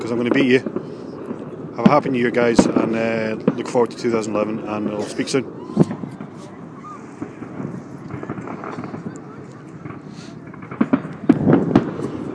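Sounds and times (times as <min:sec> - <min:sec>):
fireworks going off at a distance: 0:00.0 - 0:12.3
speech: 0:00.1 - 0:00.8, 0:01.8 - 0:06.0.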